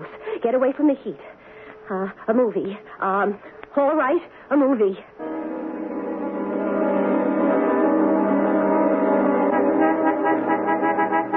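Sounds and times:
speech: 0.4 - 5.2
car horn in one long brassy blast: 5.2 - 11.3.

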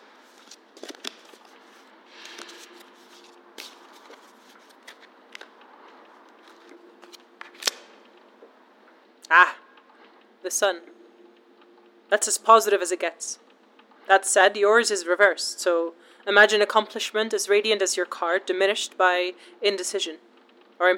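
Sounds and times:
deck of cards shuffling in a subway: 0.2 - 8.1
speech: 10.5 - 10.9, 12.1 - 13.4, 14.1 - 20.9.

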